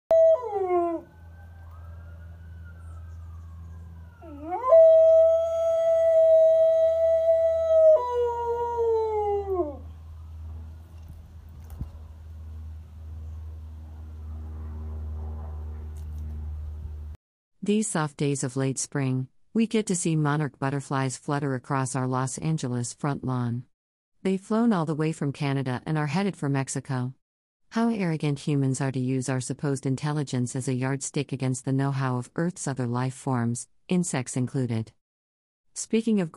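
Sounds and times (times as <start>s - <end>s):
dog howling in long wavering tones: 0.1s - 1.1s, 4.2s - 9.9s
speech: 17.7s - 35.0s, 35.8s - 36.3s.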